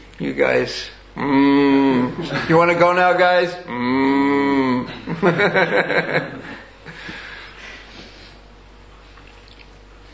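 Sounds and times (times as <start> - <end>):
speech: 0.2 - 6.6
person imitating a cow mooing: 1.2 - 2.2, 3.7 - 5.0
chuckling laughter: 4.9 - 7.2.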